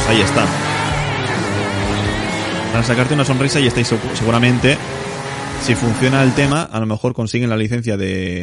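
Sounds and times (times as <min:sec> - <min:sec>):
converted car driving with broadband rush and low droning hum: 0:00.0 - 0:06.6
speech: 0:00.1 - 0:00.6, 0:02.8 - 0:08.4.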